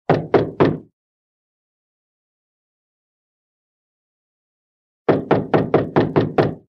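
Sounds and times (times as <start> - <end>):
door knock: 0.1 - 0.9, 5.1 - 6.6.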